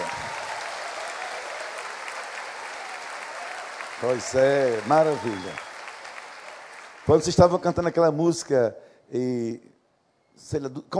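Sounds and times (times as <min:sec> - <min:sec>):
large group applauding: 0:00.0 - 0:08.0
speech: 0:04.0 - 0:05.6, 0:07.1 - 0:09.7, 0:10.4 - 0:10.9.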